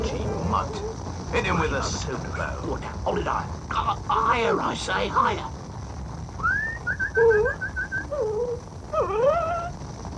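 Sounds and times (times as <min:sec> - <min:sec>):
low rumble: 0:00.0 - 0:10.1
dog whimpering: 0:00.6 - 0:01.0, 0:07.1 - 0:09.8
speech: 0:00.6 - 0:05.6.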